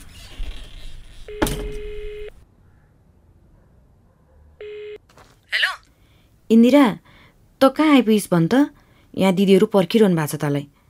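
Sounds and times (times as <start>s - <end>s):
speech: 1.3s - 1.8s, 6.5s - 7.0s, 7.6s - 10.7s
telephone ringing on the line as a call is placed: 1.3s - 2.4s.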